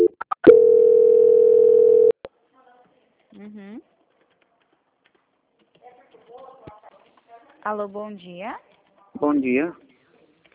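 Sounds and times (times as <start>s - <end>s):
telephone call transfer tone: 0.0s - 2.2s
speech: 7.6s - 9.9s.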